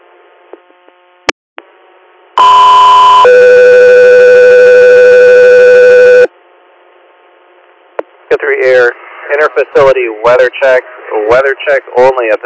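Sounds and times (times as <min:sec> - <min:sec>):
radio dispatch alert tones on an air medical dispatch channel: 0:02.4 - 0:06.3
speech: 0:09.6 - 0:12.4.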